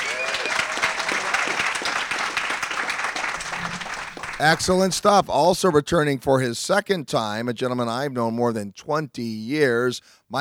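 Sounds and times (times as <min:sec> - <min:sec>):
audience on a boat applauding: 0:00.0 - 0:05.2
speech: 0:04.4 - 0:10.3.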